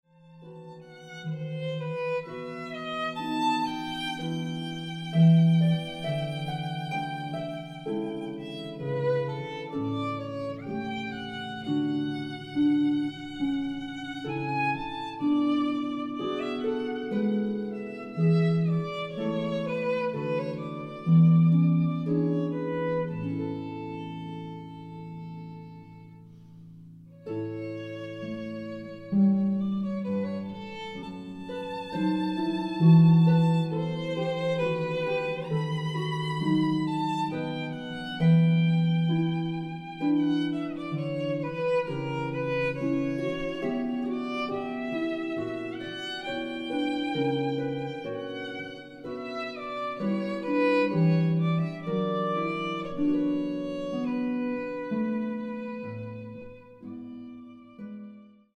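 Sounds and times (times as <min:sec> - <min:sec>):
harp: 0:00.0 - 0:58.5
violin: 0:00.0 - 0:58.5.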